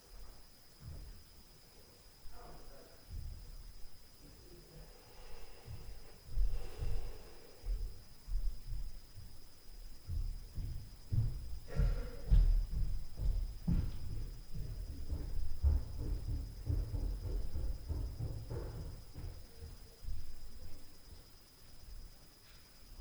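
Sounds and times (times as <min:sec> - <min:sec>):
footsteps on stairs at night: 0:00.1 - 0:01.5, 0:03.1 - 0:04.0, 0:05.5 - 0:21.2.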